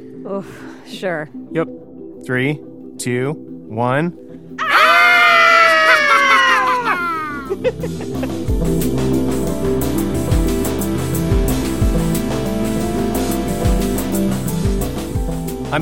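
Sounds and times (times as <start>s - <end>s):
speech: 0.0s - 4.3s, 7.5s - 10.0s
music: 0.0s - 15.7s
group of people doing Halloween screams: 4.6s - 7.6s
laughter: 4.6s - 8.5s.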